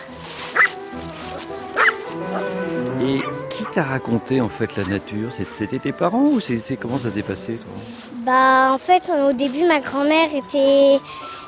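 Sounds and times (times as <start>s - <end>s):
noise: 0.0s - 11.4s
dog yapping: 1.8s - 2.5s
speech: 3.8s - 11.4s.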